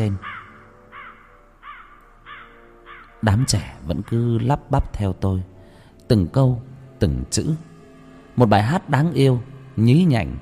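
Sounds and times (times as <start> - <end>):
speech: 0.0 - 0.3, 3.2 - 5.5, 6.1 - 7.7, 8.4 - 10.3
crow cawing from a rooftop: 0.0 - 4.5.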